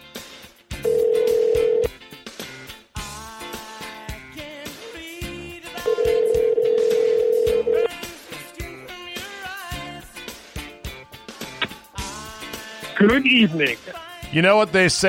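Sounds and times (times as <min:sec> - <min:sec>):
music playing: 0:00.0 - 0:15.0
phone line ringing tone: 0:00.8 - 0:01.9, 0:05.9 - 0:08.0
speech: 0:13.0 - 0:15.0.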